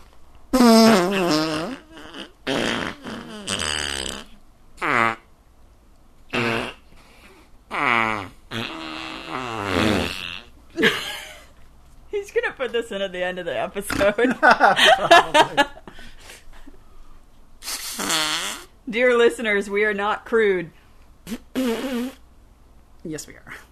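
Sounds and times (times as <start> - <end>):
voice blowing wet raspberry fart imitations: 0.0 - 5.3, 6.3 - 10.6, 17.6 - 18.8, 21.2 - 22.3
speech: 12.7 - 15.7, 19.0 - 21.4, 23.1 - 23.6
laughter: 14.2 - 16.0.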